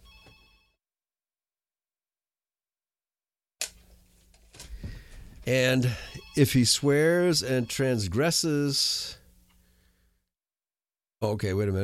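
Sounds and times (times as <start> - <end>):
short electronic phone ring: 0.0 - 0.8, 5.8 - 8.5
speech: 5.5 - 9.2, 11.2 - 11.8.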